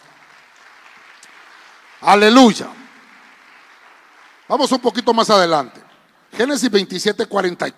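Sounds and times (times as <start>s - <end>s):
audience clapping: 0.0s - 5.9s
speech: 2.0s - 2.8s, 4.5s - 7.7s.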